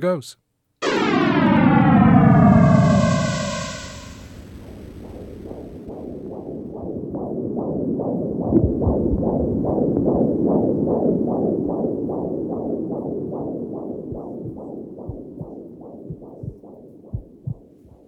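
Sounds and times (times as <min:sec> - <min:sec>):
speech: 0:00.0 - 0:01.4
Big Bang sonification electronic hiss with falling tones: 0:00.8 - 0:06.7
heartbeat-like throbbing: 0:00.8 - 0:18.0.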